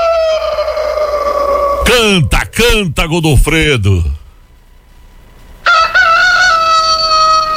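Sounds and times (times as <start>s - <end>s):
rooster crowing loudly: 0.0s - 1.9s, 5.6s - 7.5s
speech: 1.9s - 4.2s.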